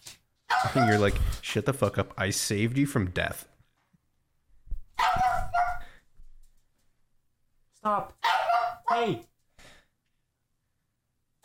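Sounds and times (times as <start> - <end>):
pug barking: 0.5 - 1.0, 5.0 - 6.0, 8.2 - 9.2
speech: 0.6 - 3.5, 7.8 - 8.2, 8.9 - 9.3.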